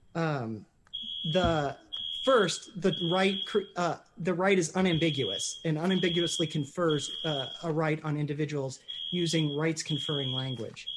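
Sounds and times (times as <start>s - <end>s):
speech: 0.2s - 10.9s
shrill high-pitched electronic alarm tone: 1.0s - 3.7s, 4.7s - 7.7s, 8.8s - 10.9s.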